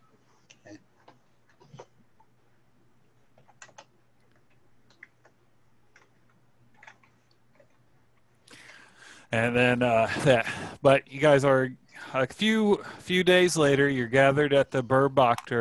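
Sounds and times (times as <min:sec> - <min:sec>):
faint steady hum: 0:00.0 - 0:15.6
computer keyboard typing: 0:03.4 - 0:06.1
speech: 0:09.3 - 0:15.6.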